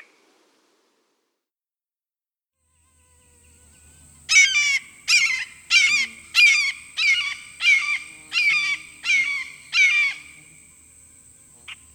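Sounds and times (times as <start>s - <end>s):
Red-shouldered Hawk calling: 3.4s - 11.9s.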